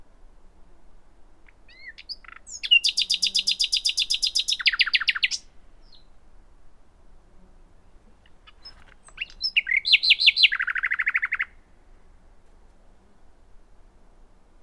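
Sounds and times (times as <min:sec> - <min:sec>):
common nightingale song, Luscinia megarhynchos: 0:01.4 - 0:06.2, 0:07.8 - 0:12.2.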